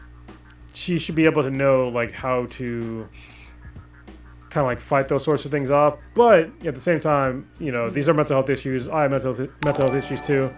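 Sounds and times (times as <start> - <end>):
speech: 0.8 - 3.4, 4.5 - 10.5
bright electronic donation alert chime: 9.6 - 10.5.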